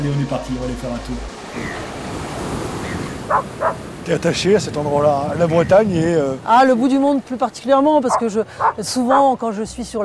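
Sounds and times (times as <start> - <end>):
speech: 0.0 - 2.1, 3.3 - 10.0
ocean waves washing onto the seashore by a seawall on the Brittany coast: 0.0 - 10.0
wind noise on the Brittany coast: 1.4 - 7.2.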